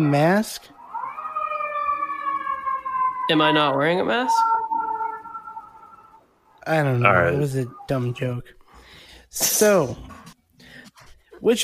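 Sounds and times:
speech: 0:00.0 - 0:00.8, 0:03.3 - 0:04.5, 0:06.6 - 0:08.6, 0:09.3 - 0:10.2, 0:11.4 - 0:11.6
police siren wailing outside: 0:00.1 - 0:08.0.

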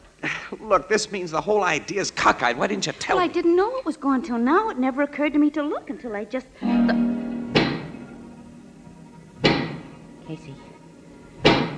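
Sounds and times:
faint low hum: 0:00.0 - 0:11.7
speech: 0:00.6 - 0:07.1
heavy knocking of a giant pick: 0:06.9 - 0:08.1, 0:09.4 - 0:09.9, 0:11.4 - 0:11.7.

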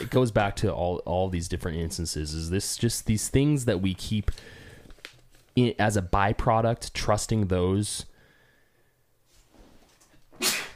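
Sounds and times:
speech: 0:00.1 - 0:04.6, 0:05.6 - 0:08.1
person inhaling: 0:04.3 - 0:05.0, 0:08.1 - 0:09.0
loud sneeze: 0:10.4 - 0:10.7.

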